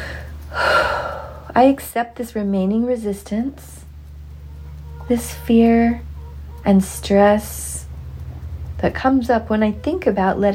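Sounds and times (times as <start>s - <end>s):
big deep breath during a guided tapping exercise: 0.0s - 1.6s
speech: 1.6s - 3.8s, 5.1s - 7.7s, 8.8s - 10.5s.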